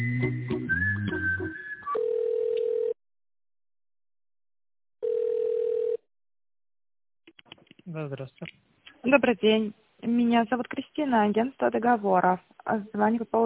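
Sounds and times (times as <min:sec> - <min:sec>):
whistle-like telephone tone: 0:00.0 - 0:02.0
telephone ringing tones: 0:01.9 - 0:03.0, 0:05.0 - 0:06.0
speech: 0:08.0 - 0:13.4.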